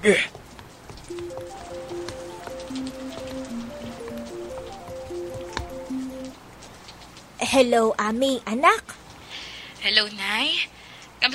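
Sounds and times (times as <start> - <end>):
speech: 0.0 - 0.4, 7.5 - 9.0, 9.8 - 11.3
raindrops pattering: 0.0 - 8.6
simple electronic melody: 1.1 - 6.4
heavy rain: 1.1 - 6.9.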